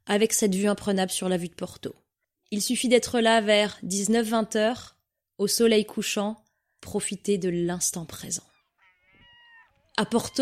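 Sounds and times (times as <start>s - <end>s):
speech: 0.1s - 8.5s, 10.0s - 10.4s
seagull calling: 8.2s - 10.4s.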